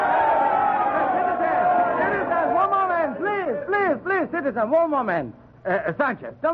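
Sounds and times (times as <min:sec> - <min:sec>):
large crowd in Quito cheering and shouting for a new president: 0:00.0 - 0:03.6
speech: 0:04.3 - 0:06.5.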